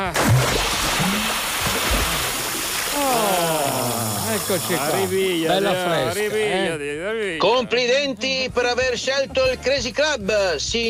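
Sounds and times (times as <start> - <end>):
bucket of water dumped, splashing and sloshing: 0.0 - 5.5
speech: 4.5 - 10.8.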